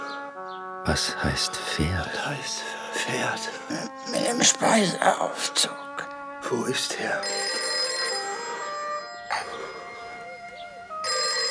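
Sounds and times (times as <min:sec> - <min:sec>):
speech: 0:00.8 - 0:07.6
telephone ringing: 0:07.2 - 0:10.2, 0:11.0 - 0:11.4.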